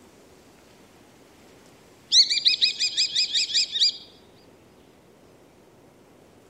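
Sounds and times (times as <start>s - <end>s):
common kestrel giving shrill repeated calls played back: 2.1s - 4.2s.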